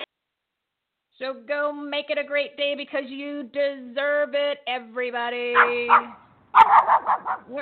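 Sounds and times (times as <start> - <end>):
speech: 1.3 - 7.5
dog barking: 5.6 - 7.5.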